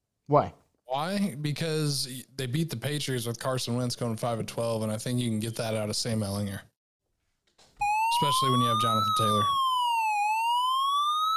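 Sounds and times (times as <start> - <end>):
speech: 0.3 - 6.7, 8.2 - 9.6
police siren passing outside: 7.8 - 11.3.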